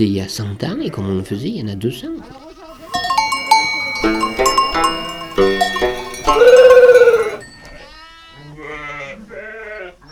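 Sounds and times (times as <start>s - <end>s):
speech: 0.0s - 2.4s
livestock bells clanking in a sheepfold: 2.8s - 7.4s.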